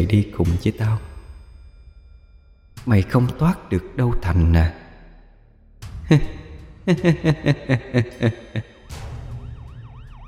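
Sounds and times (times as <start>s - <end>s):
speech: 0.0s - 1.1s, 2.8s - 4.8s, 6.1s - 9.0s
laughter: 6.1s - 8.8s
ambulance siren: 8.8s - 10.2s.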